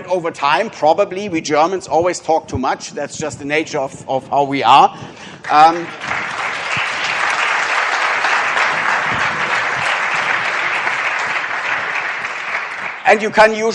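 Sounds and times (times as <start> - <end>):
speech: 0.0 - 6.4, 13.1 - 13.7
audience applauding at the end of a conference talk: 5.4 - 13.3.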